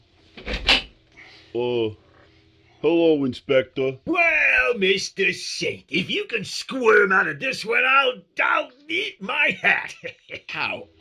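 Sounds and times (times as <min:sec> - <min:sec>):
door creaking as it swings: 0:00.4 - 0:00.9
speech: 0:01.5 - 0:02.0, 0:02.8 - 0:10.9
laughter: 0:08.9 - 0:10.8.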